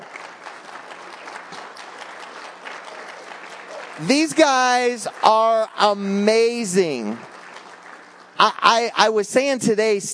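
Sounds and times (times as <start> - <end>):
large audience applauding: 0.0 - 9.2
speech: 4.0 - 7.3, 8.4 - 10.1.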